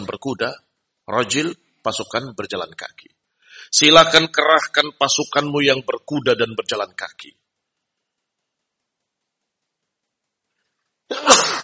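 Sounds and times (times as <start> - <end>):
speech: 0.0 - 7.4, 11.1 - 11.5
sneeze: 11.1 - 11.6.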